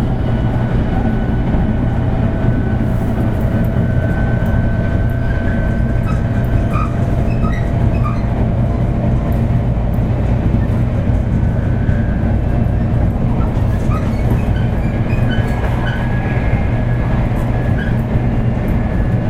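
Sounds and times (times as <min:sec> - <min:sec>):
Shinkansen 500 series high-speed train running with a deep rumble: 0:00.0 - 0:19.2
constant whine of a high-speed train: 0:00.0 - 0:19.2
faint squeals and clicks of a high-speed train: 0:03.6 - 0:08.3, 0:13.4 - 0:16.8.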